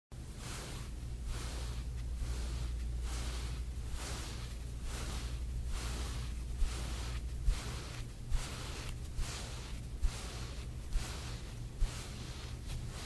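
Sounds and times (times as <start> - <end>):
stroking a cat's fur: 0.2 - 13.0.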